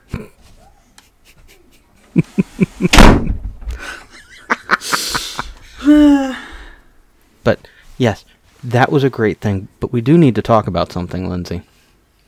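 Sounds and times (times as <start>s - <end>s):
burst of laughter: 1.0s - 2.9s, 3.8s - 6.2s
door pushed shut with a sharp bang: 2.9s - 3.8s
speech: 8.0s - 11.7s.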